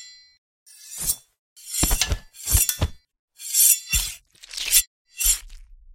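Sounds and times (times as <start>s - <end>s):
fight gore: 0.9s - 5.7s.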